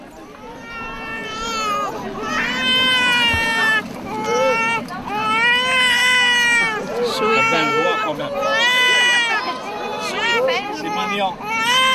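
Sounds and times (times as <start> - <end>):
baby who is too hot crying: 0.6 - 11.9.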